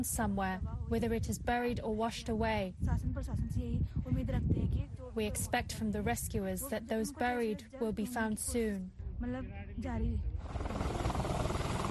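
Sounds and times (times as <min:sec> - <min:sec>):
speech: 0:00.0 - 0:10.9
helicopter flying with rotor beating and engine whine: 0:10.4 - 0:11.8.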